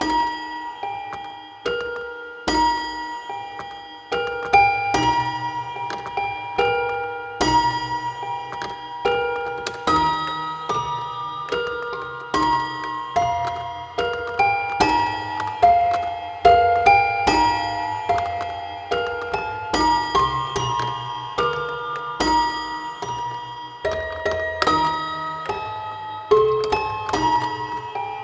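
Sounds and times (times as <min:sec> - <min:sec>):
toy piano: 0:00.0 - 0:28.2.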